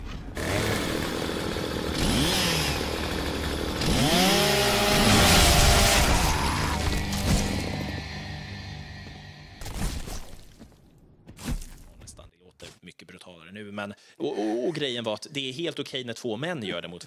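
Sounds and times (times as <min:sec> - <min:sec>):
chainsaw revving from a video game: 0:00.4 - 0:09.5
sharp crunching hits: 0:03.7 - 0:12.0
speech: 0:13.8 - 0:14.0, 0:14.7 - 0:17.0.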